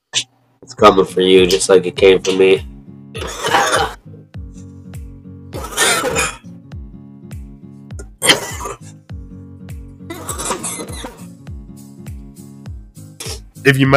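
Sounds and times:
speech: 0:00.7 - 0:03.7, 0:13.7 - 0:13.9
harsh hacking coughs after a joint hit: 0:03.1 - 0:04.0, 0:05.5 - 0:06.5, 0:08.0 - 0:09.0, 0:10.1 - 0:11.3, 0:13.2 - 0:13.5
throat-clearing noises: 0:05.6 - 0:06.5, 0:08.0 - 0:09.0, 0:10.1 - 0:11.3.

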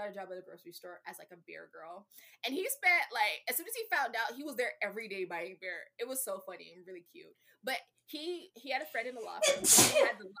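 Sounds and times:
speech: 0:00.1 - 0:10.3
single loud sneeze: 0:09.4 - 0:10.2.

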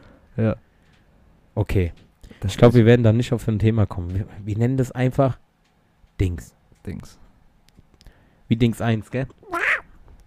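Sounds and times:
speech: 0:00.4 - 0:00.6, 0:01.6 - 0:05.4, 0:06.2 - 0:07.2, 0:08.5 - 0:09.5
person imitating a house cat with a nasal meow: 0:09.4 - 0:09.9.

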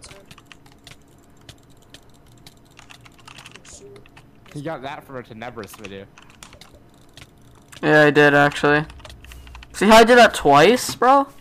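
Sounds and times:
fast mouse clicking: 0:00.0 - 0:04.6, 0:05.4 - 0:09.8
low steady hum: 0:00.0 - 0:11.3
speech: 0:03.8 - 0:06.2, 0:07.8 - 0:09.0, 0:09.8 - 0:11.3.

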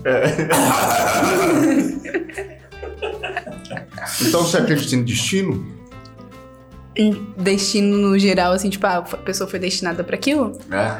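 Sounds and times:
speech: 0:00.0 - 0:02.5, 0:04.2 - 0:05.8, 0:07.0 - 0:10.9
laughter: 0:00.0 - 0:05.1
woman coughing: 0:00.5 - 0:02.0.

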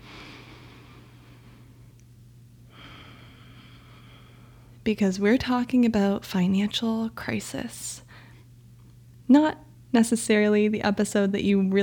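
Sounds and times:
slow deep breath drawn in and let out: 0:00.0 - 0:01.8, 0:02.7 - 0:04.8
low steady hum: 0:00.0 - 0:11.8
speech: 0:04.9 - 0:08.0, 0:09.3 - 0:11.8.

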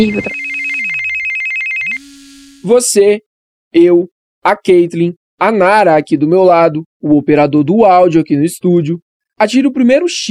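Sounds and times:
speech: 0:00.0 - 0:00.5, 0:02.6 - 0:10.2
telephone ringing with a trilling electronic tone: 0:00.0 - 0:02.7.

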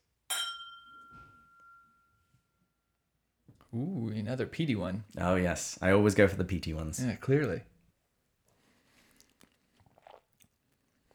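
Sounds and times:
faint glass handling noises: 0:00.3 - 0:02.0
two whisky glasses clinking in a toast: 0:00.3 - 0:02.2
speech: 0:03.7 - 0:07.7.

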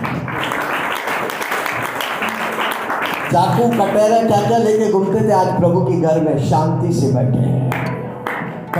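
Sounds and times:
crowd clapping at a church service: 0:00.0 - 0:04.8, 0:07.7 - 0:08.7
speech: 0:03.3 - 0:07.9.

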